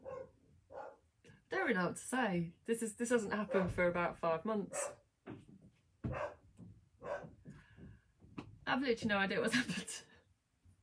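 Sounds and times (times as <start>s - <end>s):
dogs barking: 0.0s - 1.0s, 3.4s - 3.7s, 4.7s - 5.0s, 6.0s - 7.4s
speech: 1.6s - 5.0s, 8.7s - 10.1s.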